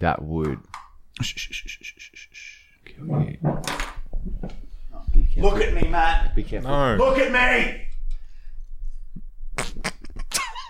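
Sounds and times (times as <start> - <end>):
speech: 0.0 - 4.6, 5.4 - 7.9
sputtering fart: 9.5 - 10.3.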